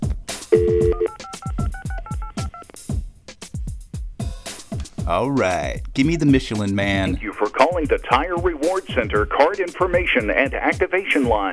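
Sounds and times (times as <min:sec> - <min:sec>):
touch-tone DTMF keypad beeps dialing a toll-free 800 number: 0:00.5 - 0:02.7
speech: 0:05.1 - 0:11.5.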